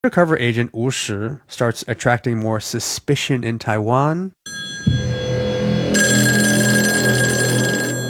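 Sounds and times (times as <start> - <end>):
speech: 0.0 - 4.6
bright high tone: 4.5 - 8.0
office telephone ringing with electronic trill: 4.5 - 8.0.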